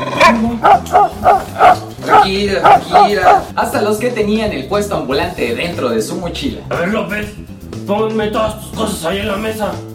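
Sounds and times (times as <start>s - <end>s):
dog barking short sharp yaps: 0.2s - 3.5s
speech: 2.2s - 9.9s.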